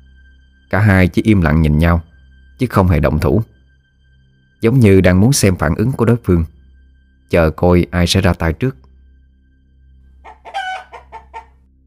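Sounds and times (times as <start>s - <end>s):
speech: 0.7s - 3.5s, 4.6s - 6.6s, 7.3s - 8.8s
rooster crowing: 10.2s - 11.6s.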